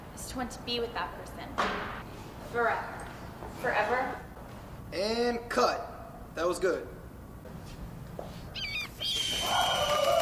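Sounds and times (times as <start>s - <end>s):
speech: 0.4s - 4.3s, 4.9s - 7.0s
birds chirping and calling: 8.6s - 10.0s.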